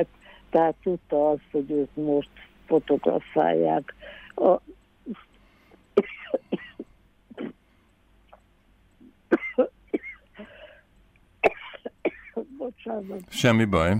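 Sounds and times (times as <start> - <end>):
speech: 0.0 - 5.2, 6.0 - 6.5, 12.4 - 13.9
person coughing in short harsh bursts: 6.0 - 7.6, 9.3 - 10.2, 11.4 - 12.5.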